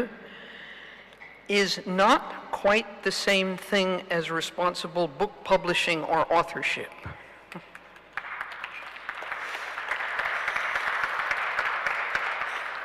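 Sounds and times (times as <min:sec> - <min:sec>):
speech: 0:00.0 - 0:00.2, 0:01.5 - 0:07.7
audience applause: 0:07.8 - 0:12.8.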